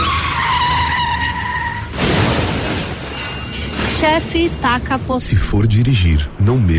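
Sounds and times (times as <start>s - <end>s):
car tire squeal from hard braking: 0.0s - 2.0s
car skidding: 0.0s - 2.4s
speech: 4.0s - 6.7s.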